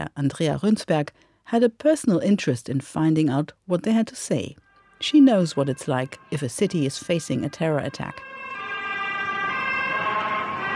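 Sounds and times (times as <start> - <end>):
speech: 0.0 - 8.3
ambulance sirens wailing in Stockholm after an attack: 5.0 - 10.7.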